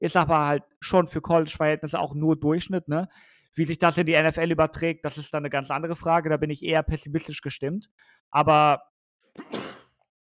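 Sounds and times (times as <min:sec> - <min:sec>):
speech: 0:00.0 - 0:09.8
sneeze: 0:09.4 - 0:10.0.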